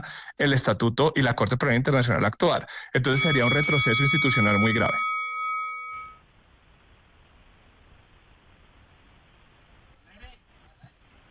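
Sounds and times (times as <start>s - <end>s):
speech: 0.0s - 5.1s
low hiss of room noise: 2.6s - 11.2s
debate bell ringing: 3.1s - 6.2s.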